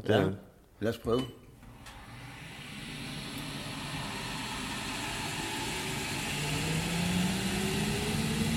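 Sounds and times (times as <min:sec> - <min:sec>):
speech: 0:00.0 - 0:01.4
coffee roaster motor hum climbing in pitch: 0:01.6 - 0:08.5
gas-fired coffee roaster fed from gas bottles roaring: 0:01.6 - 0:08.5.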